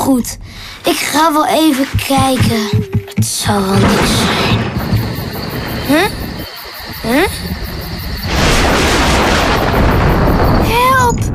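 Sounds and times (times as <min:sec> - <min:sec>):
speech: 0:00.0 - 0:05.0, 0:05.9 - 0:06.2, 0:07.0 - 0:07.5
dense sustained thunder rumble: 0:01.9 - 0:11.3
loud thunder crack: 0:03.6 - 0:11.3.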